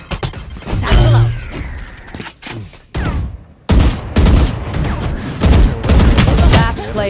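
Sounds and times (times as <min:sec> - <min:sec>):
video game gunfire: 0:03.0 - 0:06.8.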